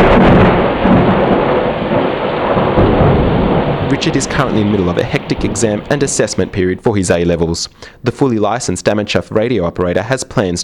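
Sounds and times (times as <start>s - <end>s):
steady heavy rain: 0.0s - 7.5s
deep rolling rumble of thunder: 0.0s - 7.6s
speech: 4.0s - 10.6s.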